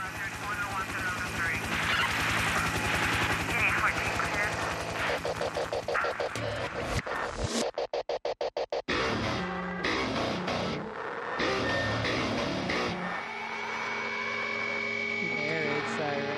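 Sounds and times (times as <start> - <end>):
helicopter rotor chop in a song intro: 0.0 - 16.3
song music: 6.0 - 16.3.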